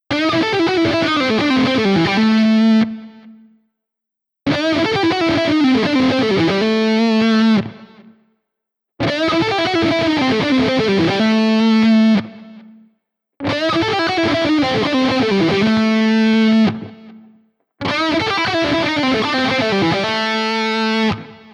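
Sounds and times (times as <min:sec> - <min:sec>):
electric guitar through single coil lead pickup: 0:00.0 - 0:03.5, 0:04.5 - 0:08.3, 0:09.0 - 0:21.5.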